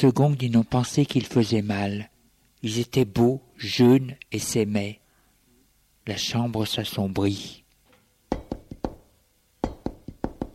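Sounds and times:
speech: 0:00.0 - 0:05.0, 0:06.1 - 0:07.6
firm knocking on a door: 0:08.3 - 0:09.0, 0:09.6 - 0:10.5.

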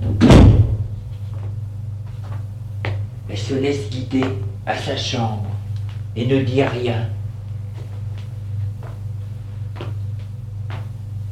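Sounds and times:
door pushed shut with a foot: 0:00.0 - 0:01.0
steady low hum: 0:00.0 - 0:11.3
speech: 0:03.5 - 0:05.6, 0:06.2 - 0:07.2.

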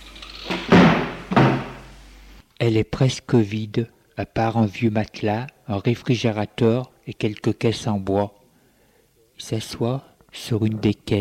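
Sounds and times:
cellar door pushed shut with heavy dull thuds: 0:00.5 - 0:01.9
speech: 0:02.6 - 0:08.4, 0:09.4 - 0:11.1.

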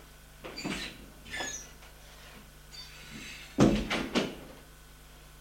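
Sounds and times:
bathroom door opening and closing: 0:00.5 - 0:01.8, 0:02.8 - 0:04.4.

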